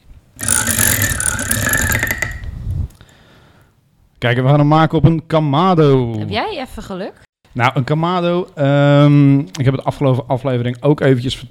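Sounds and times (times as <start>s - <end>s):
wheel spun by hand with ratcheting clicks: 0.4s - 2.6s
speech: 4.2s - 11.4s.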